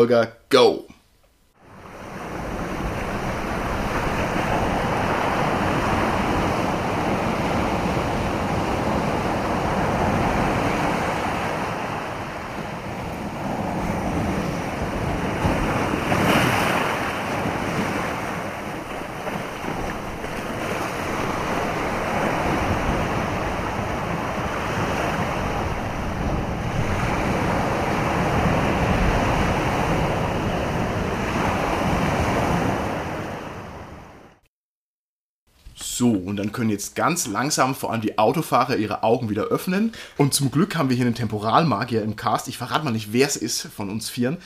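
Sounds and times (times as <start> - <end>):
speech: 0.0 - 0.9, 36.6 - 44.4
wind rushing: 1.6 - 34.1
ocean waves breaking on a shore: 1.6 - 34.4.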